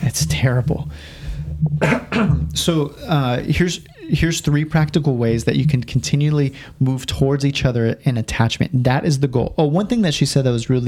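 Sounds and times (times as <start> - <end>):
faint throat sound: 0.0 - 4.2
speech: 0.2 - 10.8
person with seasonal allergies coughing: 1.8 - 2.5.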